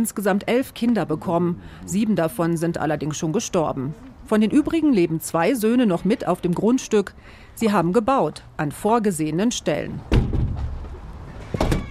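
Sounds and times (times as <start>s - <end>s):
speech: 0.0s - 10.2s
house door being opened: 10.1s - 11.8s.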